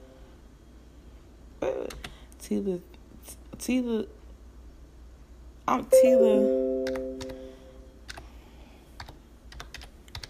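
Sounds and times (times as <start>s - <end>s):
speech: 2.5s - 4.2s, 5.7s - 7.0s
faint tone humming: 5.7s - 8.0s
typing on a computer keyboard: 9.0s - 10.2s.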